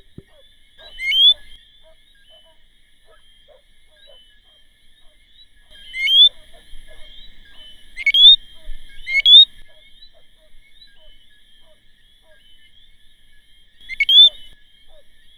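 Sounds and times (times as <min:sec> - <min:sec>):
Eleutherodactylus martinicensis calling: 0:00.0 - 0:01.6, 0:05.7 - 0:12.5, 0:13.8 - 0:15.3.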